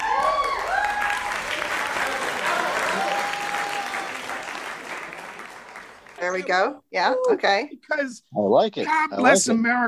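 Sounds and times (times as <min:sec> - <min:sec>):
cheers and whistles: 0:00.0 - 0:04.6
large crowd applauding: 0:00.0 - 0:06.6
speech: 0:06.3 - 0:09.8.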